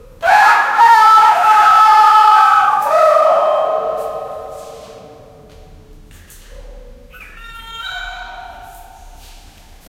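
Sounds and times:
bear screaming in a cave: 0:00.2 - 0:04.7, 0:07.1 - 0:09.2.

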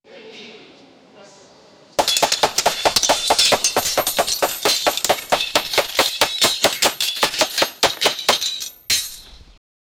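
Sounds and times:
catapults: 0:02.0 - 0:09.3
horse hooves: 0:02.0 - 0:09.3
swords clashing: 0:02.0 - 0:09.3.

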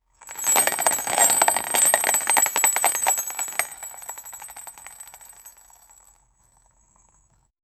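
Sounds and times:
small wheel rolling: 0:00.2 - 0:06.1.

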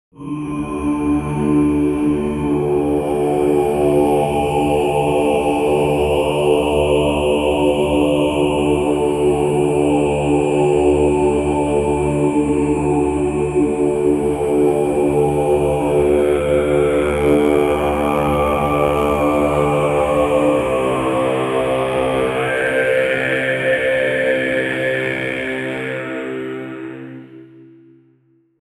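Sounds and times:
haunting Gregorian chant: 0:00.1 - 0:28.0.

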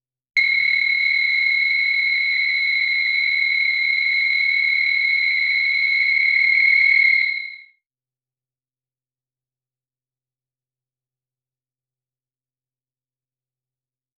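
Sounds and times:
sci-fi bomb beeping: 0:00.4 - 0:07.6.

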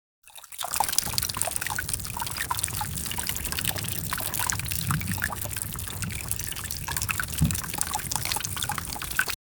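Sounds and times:
water emerging: 0:00.3 - 0:09.4.

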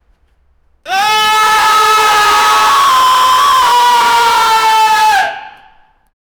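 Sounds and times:
man stifling a scream in anguish: 0:00.9 - 0:05.8.

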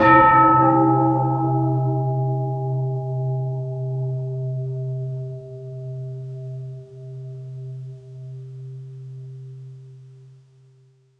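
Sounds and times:
large temple bell strike: 0:00.0 - 0:07.9.

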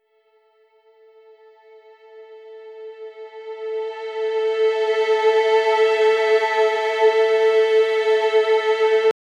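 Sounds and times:
light strings with soft violin: 0:01.7 - 0:09.1.

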